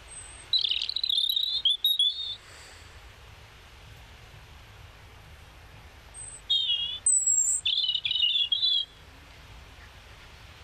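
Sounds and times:
European robin singing warbling phrases: 0:00.0 - 0:02.5, 0:06.1 - 0:09.0.

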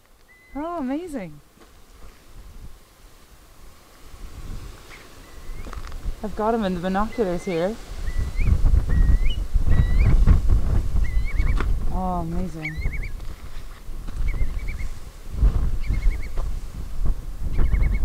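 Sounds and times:
agitated male bird calling near its nest: 0:00.2 - 0:01.1, 0:04.8 - 0:05.8, 0:06.6 - 0:10.3, 0:11.0 - 0:11.7, 0:12.4 - 0:15.0, 0:15.8 - 0:16.4, 0:17.5 - 0:18.0
speech: 0:00.6 - 0:01.5, 0:06.2 - 0:07.9, 0:12.0 - 0:13.0.

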